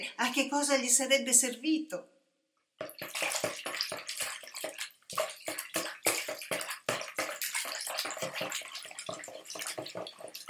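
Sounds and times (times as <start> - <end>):
speech: 0.0 - 2.2
water splashing as someone bathes in a river: 2.8 - 10.4.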